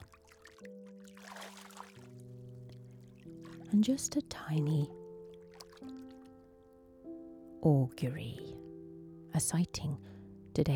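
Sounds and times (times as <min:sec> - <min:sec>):
water splashing from kicking legs: 0:00.0 - 0:06.8
speech: 0:03.7 - 0:05.0, 0:07.6 - 0:08.6, 0:09.4 - 0:10.7.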